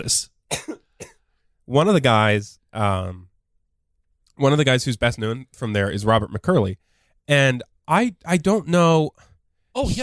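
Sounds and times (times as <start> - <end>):
speech: 0.0 - 0.3, 1.7 - 3.3, 4.4 - 10.0
quick dry coughs: 0.5 - 1.3.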